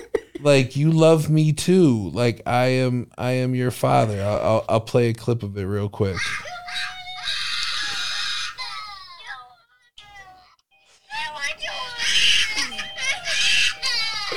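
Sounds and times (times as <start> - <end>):
speech: 0.4 - 6.5
young children crying and wailing: 6.2 - 10.6, 11.2 - 14.3.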